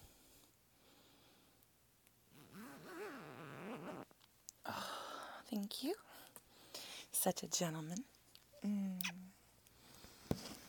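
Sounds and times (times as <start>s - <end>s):
zipper being zipped up: 2.3s - 4.1s
speech: 5.5s - 6.3s, 7.2s - 9.4s.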